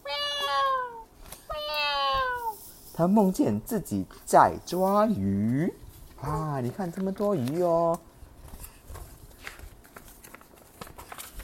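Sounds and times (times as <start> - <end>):
kitten meowing: 0.0 - 2.6
speech: 3.0 - 8.1.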